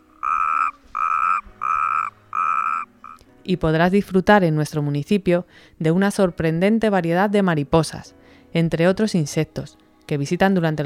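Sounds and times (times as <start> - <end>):
common frog and natterjack toad croaking in ponds on spring nights: 0.0 - 3.2
speech: 3.4 - 10.8.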